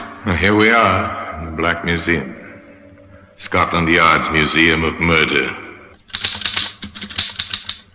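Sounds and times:
speech: 0.4s - 2.4s, 3.4s - 5.6s
rapid typing on a mechanical typewriter: 6.0s - 7.9s.

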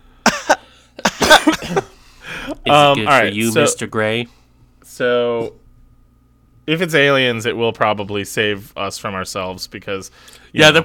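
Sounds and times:
person coughing: 0.2s - 2.6s
speech: 2.6s - 5.6s, 6.7s - 10.8s.

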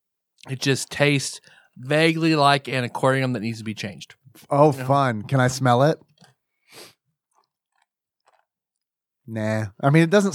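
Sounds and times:
speech: 0.4s - 6.1s, 6.7s - 6.9s, 9.3s - 10.3s
chewing a crispy crunchy snack: 7.2s - 8.9s.

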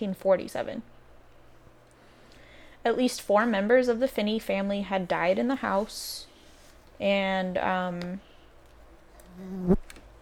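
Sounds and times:
speech: 0.0s - 1.0s, 2.8s - 6.3s, 7.0s - 8.3s, 9.4s - 9.9s
fly buzzing against a microphone: 9.3s - 9.9s.

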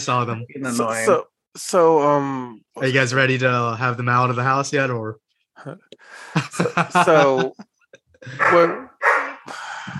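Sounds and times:
speech: 0.0s - 8.9s
laughter: 6.3s - 8.7s
big dog barking and howling: 8.4s - 9.4s.

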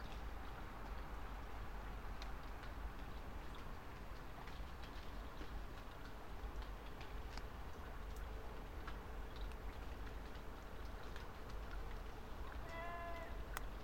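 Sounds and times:
night rain pattering on a drystone wall: 0.0s - 13.8s
scattered sharp drips: 0.1s - 13.8s.

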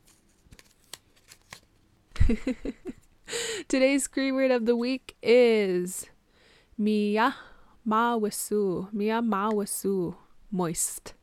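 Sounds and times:
paper rustling as stuck paper is pulled: 0.0s - 1.9s
speech: 2.3s - 3.0s, 3.7s - 6.1s, 6.8s - 11.2s.

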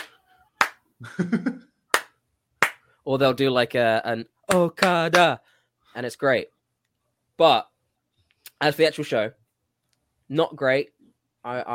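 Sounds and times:
sharp dry hand claps demonstrating wrestling crowd heel clap and face clap: 0.0s - 0.8s, 1.9s - 2.9s, 4.5s - 5.4s
speech: 1.0s - 1.6s, 3.1s - 6.6s, 7.4s - 7.7s, 8.6s - 9.4s, 10.3s - 11.7s.

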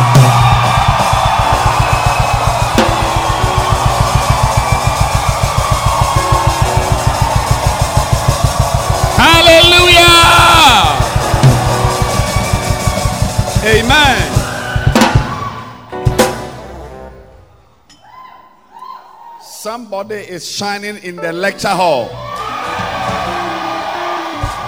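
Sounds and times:
steady rhythmic pulse: 0.0s - 17.9s
audience shouting and cheering loudly: 0.0s - 19.6s, 21.9s - 24.6s
speech: 19.8s - 22.2s.

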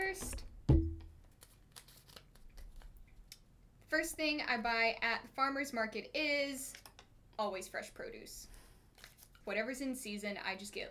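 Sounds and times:
paper slips rustling as drawn from a mason jar: 1.2s - 3.0s
speech: 4.0s - 6.8s, 7.4s - 8.6s, 9.5s - 10.8s.

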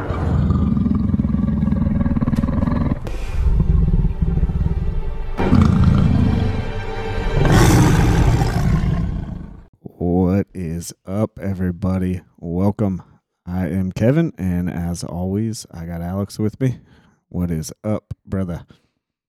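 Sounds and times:
lion deep throaty growling: 0.0s - 9.7s
lion roaring: 0.0s - 9.7s
speech: 10.9s - 18.8s.

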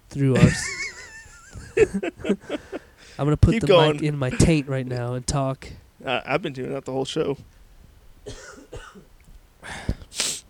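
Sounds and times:
speech: 0.1s - 0.8s, 1.8s - 2.6s, 3.2s - 7.6s
laughter: 0.4s - 2.9s
person coughing harshly: 8.3s - 9.1s.

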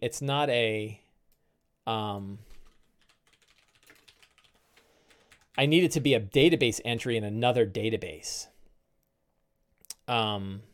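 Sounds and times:
speech: 0.0s - 1.0s, 1.8s - 2.6s, 5.6s - 8.5s, 10.1s - 10.7s
typing on a computer keyboard while preparing a tabletop role-playing session: 2.4s - 5.6s.

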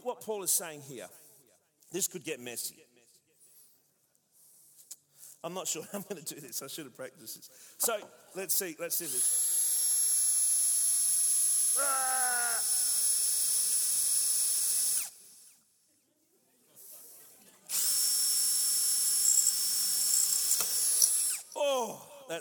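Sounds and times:
speech: 0.2s - 1.2s, 1.9s - 2.9s, 5.4s - 9.6s
power drill boring into material: 9.1s - 15.5s, 17.7s - 21.6s.

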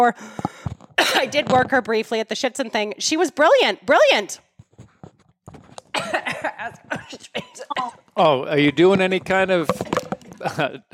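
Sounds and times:
speech: 0.0s - 4.5s, 6.0s - 10.9s
female puppy hacking and coughing: 5.9s - 8.1s.

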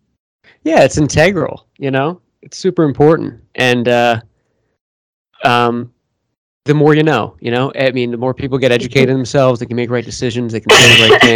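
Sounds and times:
speech: 0.6s - 4.3s, 5.4s - 5.9s, 6.6s - 11.3s
loud harsh cough: 10.7s - 11.3s.

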